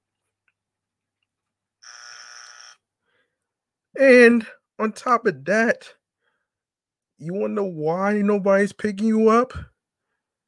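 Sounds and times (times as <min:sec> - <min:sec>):
loud harsh buzzer: 0:01.8 - 0:02.8
speech: 0:04.0 - 0:06.0, 0:07.2 - 0:09.7.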